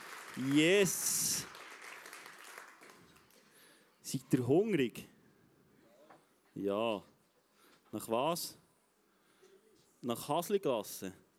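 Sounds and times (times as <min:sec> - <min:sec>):
crowd applauding a band: 0:00.0 - 0:03.6
speech: 0:00.4 - 0:01.6, 0:04.1 - 0:05.1, 0:06.6 - 0:07.1, 0:07.9 - 0:08.6, 0:10.0 - 0:11.2.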